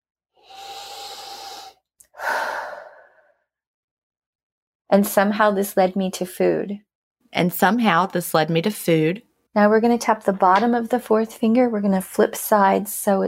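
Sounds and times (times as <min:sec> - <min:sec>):
deep breath in and out during a tapping exercise: 0:00.4 - 0:03.5
speech: 0:04.9 - 0:13.2.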